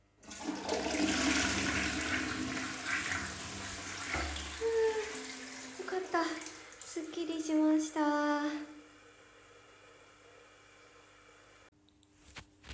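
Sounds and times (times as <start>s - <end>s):
toilet flushing: 0.2s - 11.7s
toilet water gurgling and trickling: 0.3s - 7.9s.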